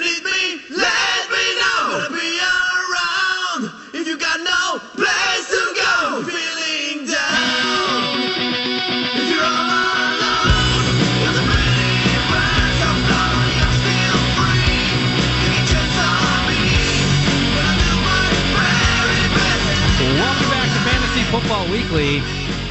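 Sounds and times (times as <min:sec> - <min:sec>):
harsh screeching vocals: 0:00.0 - 0:22.4
dense full band with heavy bass and drums: 0:07.3 - 0:22.6.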